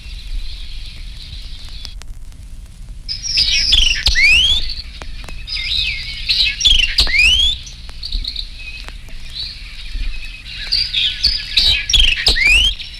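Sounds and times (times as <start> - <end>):
male White-eyed Vireo singing emphatic staccato phrases: 3.1 - 12.9.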